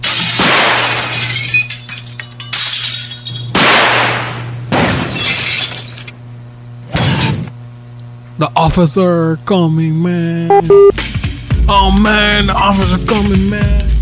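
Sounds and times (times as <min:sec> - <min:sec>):
glass shattering: 0:00.0 - 0:03.6, 0:04.8 - 0:06.2, 0:07.0 - 0:07.5
speech: 0:08.6 - 0:11.1, 0:11.7 - 0:13.9.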